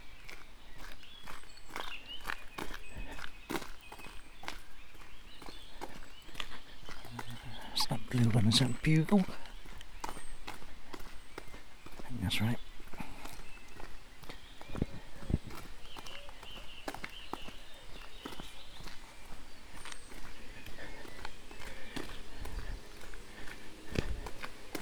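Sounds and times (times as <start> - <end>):
footsteps crossing a stream: 0.0 - 24.8
constant noisy background: 2.4 - 24.8
speech: 8.1 - 9.4, 12.3 - 12.6.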